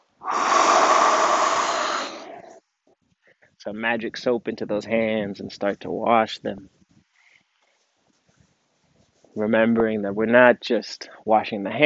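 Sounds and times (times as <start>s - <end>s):
deep inhale during a guided mindfulness hand-washing exercise: 0.2s - 2.6s
speech: 3.6s - 6.8s, 9.4s - 11.8s.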